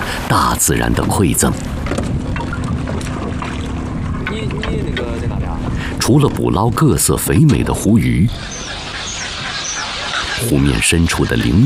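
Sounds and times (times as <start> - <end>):
fishing boat motors droning on a lake: 0.0 - 11.6
wind noise: 0.0 - 11.6
speech: 0.3 - 2.0, 6.1 - 8.8, 10.4 - 11.6.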